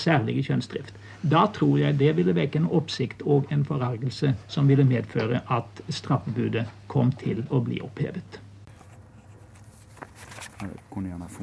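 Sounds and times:
speech: 0:00.0 - 0:08.4, 0:10.6 - 0:11.4
newspaper pages turning: 0:08.7 - 0:11.4.

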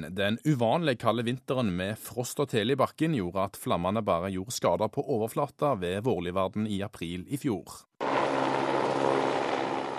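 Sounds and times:
speech: 0:00.0 - 0:07.9
helicopter droning overhead over a wildfire: 0:08.0 - 0:09.9.

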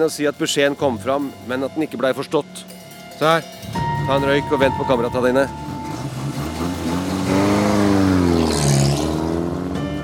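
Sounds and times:
speech: 0:00.0 - 0:05.6
car engine droning while driving to a hospital: 0:03.8 - 0:10.0.

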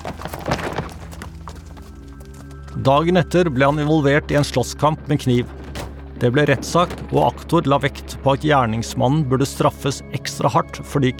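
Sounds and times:
horse hooves clip-clopping: 0:00.0 - 0:08.6
speech: 0:02.8 - 0:05.6, 0:06.2 - 0:11.1.

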